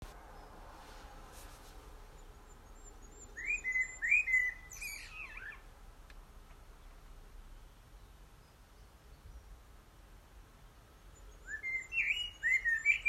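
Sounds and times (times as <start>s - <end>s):
low background noise: 0.0s - 13.0s
bird whistling: 2.8s - 5.6s, 11.4s - 13.0s.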